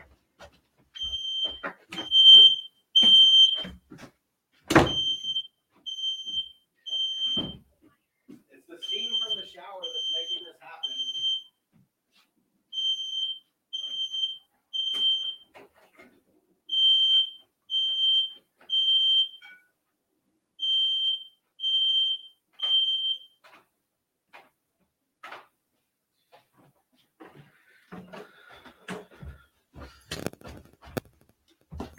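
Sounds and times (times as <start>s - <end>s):
smoke alarm beeping high-pitched tones: 1.0s - 3.8s, 4.7s - 7.6s, 8.8s - 11.5s, 12.7s - 15.5s, 16.7s - 19.7s, 20.6s - 23.4s.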